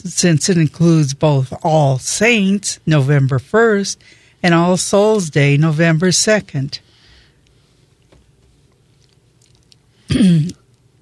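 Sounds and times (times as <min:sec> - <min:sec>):
speech: 0:00.0 - 0:06.9, 0:10.1 - 0:10.6
person clearing throat: 0:10.1 - 0:10.6.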